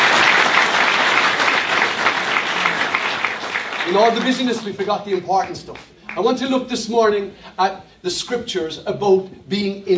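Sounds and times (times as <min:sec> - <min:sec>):
church audience applause: 0:00.0 - 0:05.3
speech: 0:03.9 - 0:09.9.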